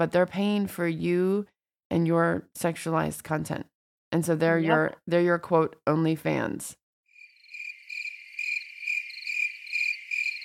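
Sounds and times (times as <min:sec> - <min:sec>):
speech: 0:00.0 - 0:06.8
cricket chirping: 0:07.1 - 0:10.4.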